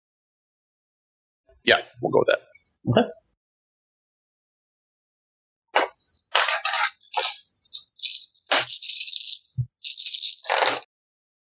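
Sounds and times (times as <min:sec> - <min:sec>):
speech: 0:01.6 - 0:03.2
dice clattering and rattling across a hard surface: 0:06.4 - 0:10.8.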